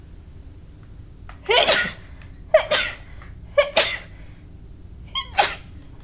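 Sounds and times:
sneezes: 1.4 - 4.1, 5.2 - 5.8.

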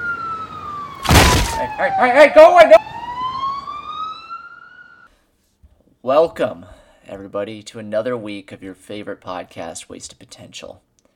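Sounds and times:
police car siren wailing with rising and falling pitch: 0.0 - 5.1
speech: 1.6 - 2.9, 6.0 - 10.9.

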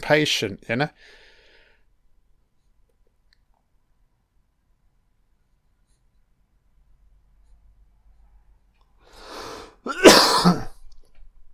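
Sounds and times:
speech: 0.1 - 1.2
coughing: 9.8 - 10.8.

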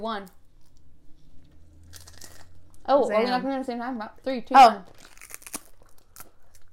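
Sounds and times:
speech: 0.0 - 0.4, 2.9 - 5.0
low hum: 0.0 - 6.7
person biting into crunchy food into a microphone: 1.9 - 2.6, 4.9 - 6.7.

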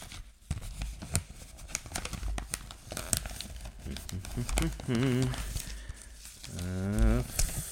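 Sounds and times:
wrapping paper crinkling while wrapping a Christmas gift: 0.0 - 7.6
voice murmuring: 3.9 - 5.5, 6.5 - 7.5
speech: 4.4 - 5.5.

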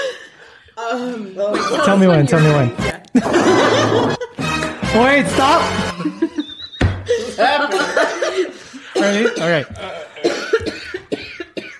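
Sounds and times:
speech: 0.9 - 4.2, 5.0 - 6.2, 7.4 - 9.9
laughter: 1.4 - 4.6, 5.8 - 11.1
harsh coughing fit: 8.9 - 11.7.

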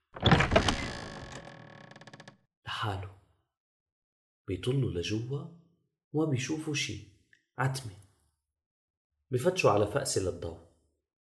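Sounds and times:
door creaking open: 0.0 - 2.4
speech: 2.8 - 3.2, 4.5 - 8.0, 9.3 - 10.7.

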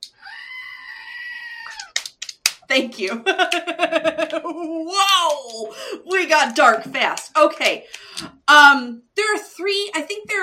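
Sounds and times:
goat screaming: 0.2 - 2.0
speech: 1.7 - 2.0, 2.7 - 10.4
laughter: 3.1 - 4.8.

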